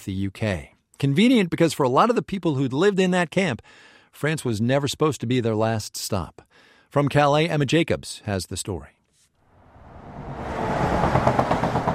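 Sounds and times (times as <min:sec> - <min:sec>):
speech: 0:00.0 - 0:09.0
heavy truck passing under a highway bridge in Calais France: 0:09.5 - 0:11.9.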